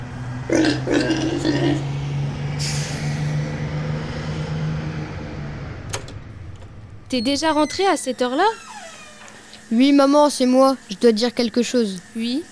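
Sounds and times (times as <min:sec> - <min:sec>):
large bus engine idling: 0:00.0 - 0:08.4
speech: 0:00.5 - 0:01.9, 0:07.1 - 0:08.7, 0:09.7 - 0:12.5
bus air brakes hissing: 0:02.5 - 0:03.7.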